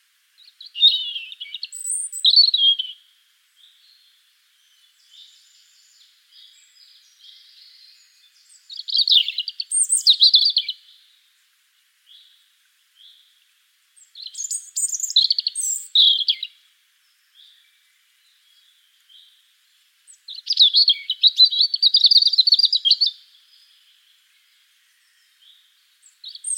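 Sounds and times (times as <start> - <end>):
European robin Erithacus rubecula song: 0.4 - 26.5.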